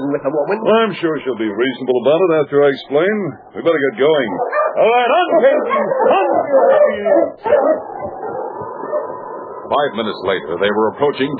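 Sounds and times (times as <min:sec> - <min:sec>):
speech: 0:00.1 - 0:08.2, 0:09.7 - 0:11.3
sled dog team barking and yipping: 0:04.0 - 0:09.4.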